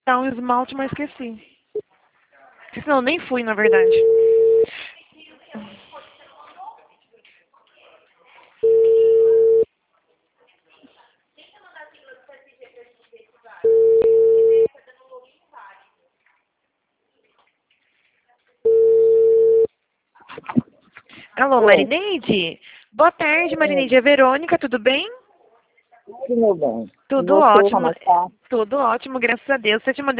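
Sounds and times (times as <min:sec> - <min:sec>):
speech: 0:00.1 - 0:01.6, 0:02.8 - 0:04.2, 0:21.4 - 0:25.2, 0:26.1 - 0:30.1
telephone ringback tone on an outgoing call: 0:03.7 - 0:04.7, 0:08.6 - 0:09.6, 0:13.6 - 0:14.7, 0:18.7 - 0:19.7
low murmurs: 0:26.1 - 0:28.3.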